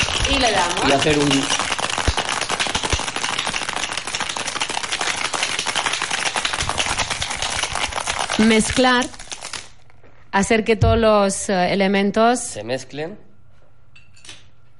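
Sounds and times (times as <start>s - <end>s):
ice rattling in a cocktail shaker being shaken: 0.0s - 9.8s
speech: 0.4s - 1.6s, 8.4s - 9.2s, 10.3s - 13.3s.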